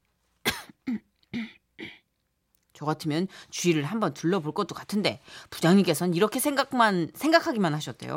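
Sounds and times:
person coughing dryly and clearing throat: 0.4s - 2.1s
speech: 0.9s - 1.1s, 2.8s - 8.1s.

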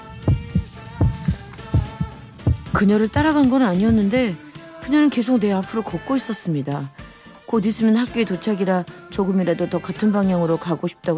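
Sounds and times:
soft sustained musical hum: 0.0s - 6.0s
heartbeat sound effect thumping: 0.2s - 4.4s
speech: 2.8s - 11.1s.

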